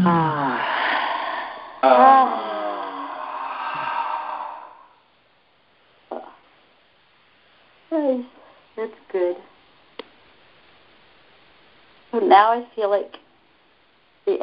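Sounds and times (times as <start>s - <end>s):
speech: 0.0s - 0.4s, 12.3s - 13.2s
group breathing in together during a guided breathing exercise: 0.3s - 5.0s.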